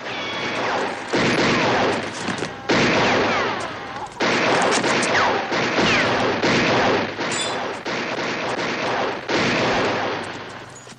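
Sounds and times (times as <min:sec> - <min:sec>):
dense continuous gunfire with overlapping shots and bursts: 0:00.0 - 0:10.8.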